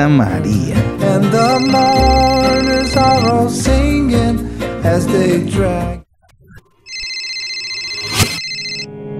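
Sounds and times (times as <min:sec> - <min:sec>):
busy music: 0:00.0 - 0:06.0
speech: 0:00.0 - 0:06.0
mobile phone synthetic electronic ringtone: 0:01.4 - 0:03.4, 0:06.9 - 0:08.9.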